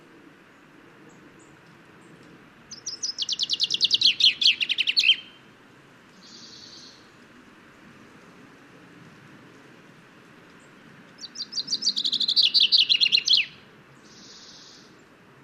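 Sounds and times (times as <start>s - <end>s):
common chaffinch Fringilla coelebs singing: 2.7s - 5.4s, 6.1s - 7.1s, 11.2s - 15.0s.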